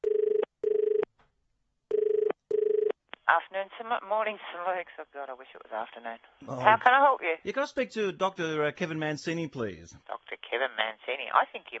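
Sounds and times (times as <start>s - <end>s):
telephone ringing in a classic double-ring pattern: 0.0s - 1.1s, 1.9s - 2.9s
speech: 3.3s - 11.7s.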